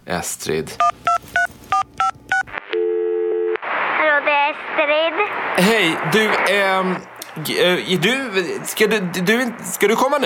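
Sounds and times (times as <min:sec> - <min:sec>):
speech: 0:00.1 - 0:01.1, 0:04.3 - 0:10.2
telephone keypad beeps: 0:00.8 - 0:02.5
steady continuous telephone line tone: 0:01.0 - 0:03.6
burst of noise: 0:03.6 - 0:10.2.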